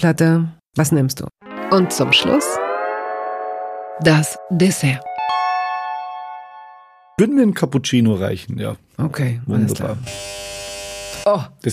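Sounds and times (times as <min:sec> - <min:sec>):
speech: 0:00.0 - 0:02.7, 0:04.0 - 0:05.3, 0:07.2 - 0:10.6, 0:11.2 - 0:11.7
doorbell chime ringing: 0:01.4 - 0:07.2.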